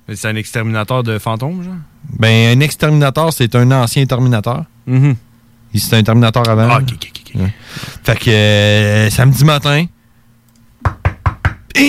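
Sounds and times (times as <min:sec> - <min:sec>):
faint low hum: 0:00.0 - 0:11.8
speech: 0:00.1 - 0:09.9
sharp knocking on a door: 0:10.8 - 0:11.7.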